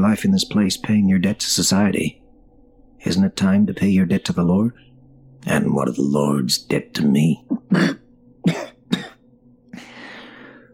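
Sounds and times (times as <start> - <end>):
speech: 0.1 - 2.2, 3.0 - 9.0
wet cough: 7.5 - 9.2.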